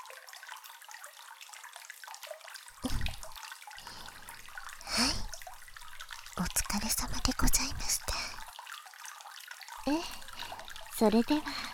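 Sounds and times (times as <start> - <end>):
water poured out to rinse: 1.9 - 11.7
speech: 9.8 - 10.2, 11.0 - 11.7.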